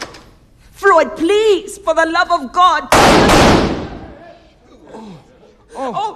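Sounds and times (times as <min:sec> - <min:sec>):
speech: 0:00.9 - 0:03.8, 0:05.7 - 0:06.1
gunshot from a gun fired at a man: 0:02.9 - 0:04.1.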